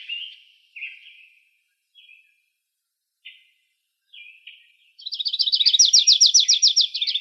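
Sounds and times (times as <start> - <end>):
Grace's warbler calling and trilling in Arizona: 0.0 - 1.4, 4.1 - 7.1.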